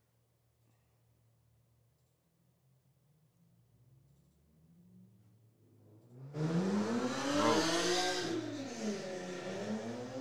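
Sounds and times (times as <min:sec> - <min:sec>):
loud motorcycle or souped-up car engine revving past: 0:06.2 - 0:10.1.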